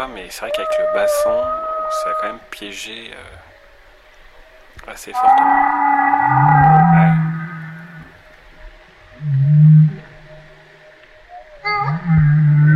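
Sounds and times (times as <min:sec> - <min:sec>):
humpback whale calls: 0:00.0 - 0:02.6, 0:05.1 - 0:12.7
speech: 0:00.0 - 0:03.5, 0:04.8 - 0:06.6.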